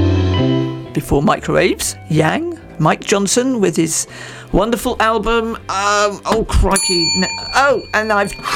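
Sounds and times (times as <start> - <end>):
speech: 1.0 - 8.5
single bright bell strike: 6.8 - 8.5.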